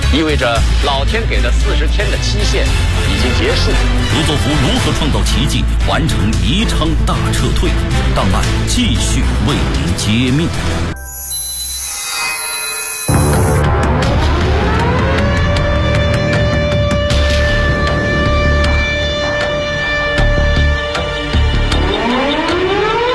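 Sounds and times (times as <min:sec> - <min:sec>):
speech: 0:00.1 - 0:11.0
short high tone: 0:10.9 - 0:13.7
air-raid warning siren wailing over a city: 0:11.9 - 0:23.1.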